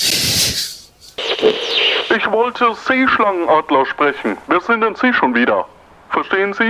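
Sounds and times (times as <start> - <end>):
walkie-talkie static hissing and crackling: 1.2 - 5.3
speech: 1.4 - 6.6.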